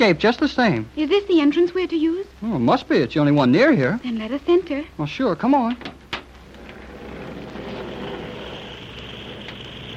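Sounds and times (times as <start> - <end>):
speech: 0.0 - 6.0
small propeller airplane engine droning indoors: 6.6 - 9.9.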